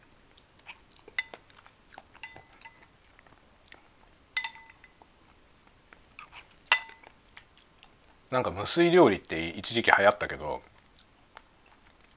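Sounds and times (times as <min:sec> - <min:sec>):
soft chewing: 0:00.0 - 0:08.3, 0:09.1 - 0:12.1
cutlery clinking against dishes during a meal: 0:01.1 - 0:01.5, 0:02.2 - 0:02.9, 0:04.4 - 0:05.0, 0:06.7 - 0:07.1
speech: 0:08.3 - 0:10.7.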